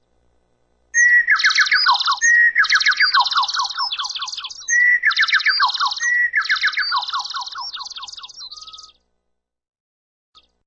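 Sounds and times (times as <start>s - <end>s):
multiple birds chirping low pitch: 1.0s - 9.0s.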